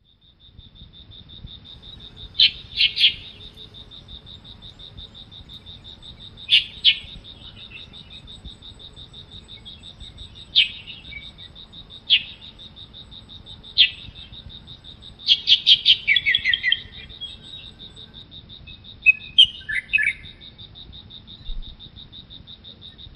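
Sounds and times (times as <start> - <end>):
insect giving a steady pulsing trill: 0.2 - 23.1
Light-vented Bulbul chirping: 1.6 - 18.2.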